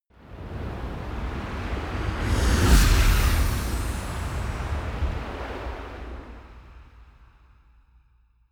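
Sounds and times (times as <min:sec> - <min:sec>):
magic gust whoosh: 0:02.0 - 0:05.8.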